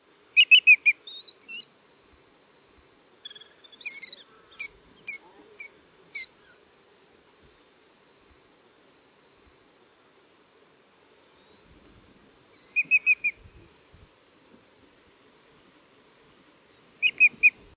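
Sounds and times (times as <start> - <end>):
Greater Yellowlegs calling: 3.2 - 6.6, 12.5 - 13.4, 17.0 - 17.6.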